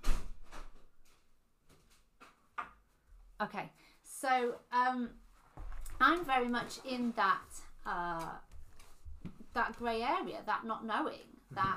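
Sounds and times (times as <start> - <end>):
door being opened and shut: 0.0 - 0.8
speech: 3.4 - 5.2, 6.0 - 8.5, 9.5 - 11.7.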